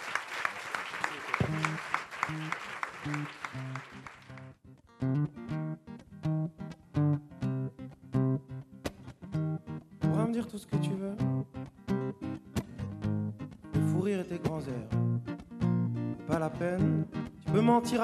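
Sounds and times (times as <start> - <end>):
crowd clapping: 0.0 - 4.6
plucked rhythmic music: 1.4 - 18.0
speech: 2.3 - 4.2, 17.7 - 18.0.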